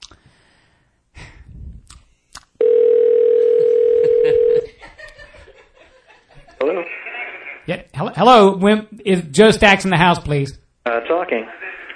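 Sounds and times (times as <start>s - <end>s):
telephone ring tone over a phone line: 2.6s - 4.7s
person chuckling softly: 3.9s - 6.6s
speech: 8.0s - 10.6s, 11.2s - 11.6s.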